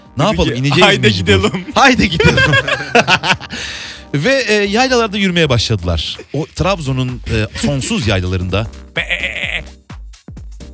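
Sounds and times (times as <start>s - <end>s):
speech: 0.2s - 9.4s
laughter: 0.4s - 3.8s, 7.4s - 8.1s, 9.0s - 9.6s
lambs bleating in highland pastures: 9.0s - 9.7s.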